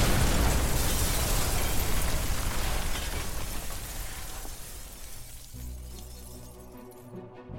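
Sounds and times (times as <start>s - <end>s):
loud explosion from a bombing of a house in Luleå: 0.0s - 3.5s
debris-like shattering from a house explosion: 0.0s - 7.1s.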